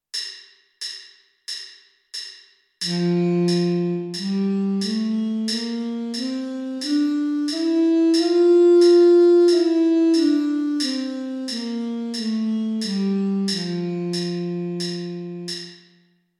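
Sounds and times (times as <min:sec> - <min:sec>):
alto sax playing a D major scale: 0:02.8 - 0:15.8.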